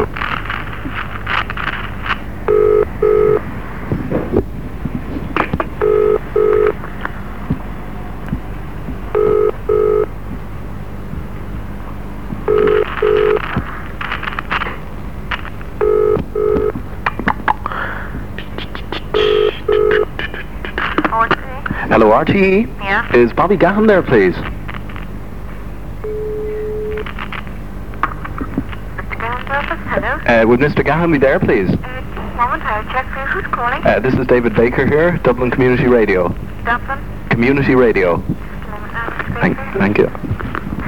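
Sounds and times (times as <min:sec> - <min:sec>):
low steady hum: 0:00.0 - 0:40.8
telephone ringing tone heard down the line: 0:02.4 - 0:03.5, 0:05.8 - 0:06.9, 0:09.1 - 0:10.1, 0:12.4 - 0:13.6, 0:15.8 - 0:16.8, 0:19.2 - 0:20.2, 0:26.0 - 0:27.2
speech: 0:22.2 - 0:24.5, 0:30.4 - 0:32.0, 0:32.7 - 0:38.3, 0:39.4 - 0:40.3.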